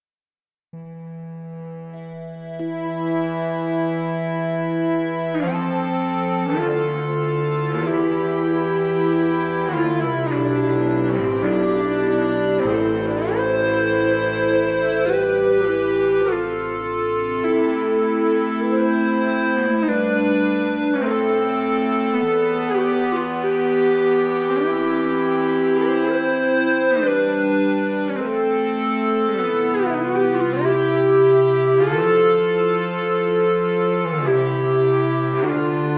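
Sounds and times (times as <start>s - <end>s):
Ebow guitar ensemble: 2.0s - 35.9s.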